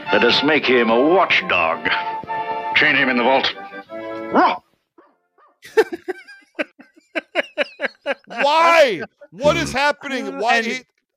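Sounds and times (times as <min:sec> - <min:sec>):
speech: 0:00.1 - 0:02.2, 0:02.8 - 0:03.6, 0:04.3 - 0:04.6, 0:05.6 - 0:06.2, 0:08.3 - 0:10.9
man barking like a dog: 0:04.3 - 0:04.7, 0:08.3 - 0:09.8
laughter: 0:05.6 - 0:10.6.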